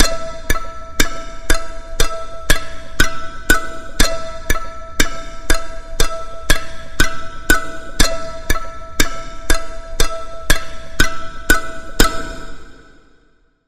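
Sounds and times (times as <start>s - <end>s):
plucked mandolin pulse: 0.0s - 12.9s.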